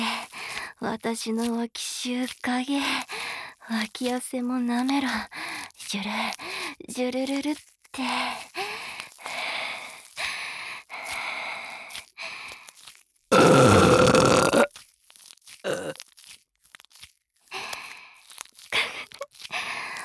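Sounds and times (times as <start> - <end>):
speech: 0.8 - 8.4
breathy wet mouth sounds: 13.3 - 14.7, 15.6 - 16.0, 18.6 - 20.0
long loud burp: 13.3 - 14.7, 15.7 - 16.0
sniffing: 13.3 - 14.7, 18.8 - 20.0.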